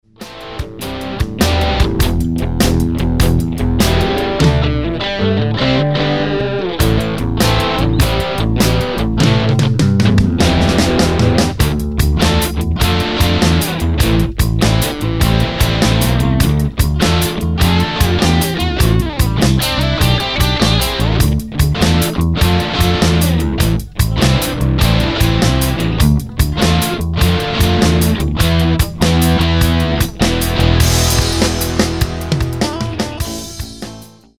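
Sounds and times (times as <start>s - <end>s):
guitar solo: 0.2s - 34.2s.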